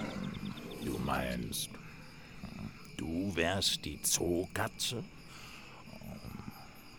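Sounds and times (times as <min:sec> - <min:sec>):
lion roaring: 0:00.0 - 0:01.4
speech: 0:00.8 - 0:01.8, 0:02.5 - 0:05.2.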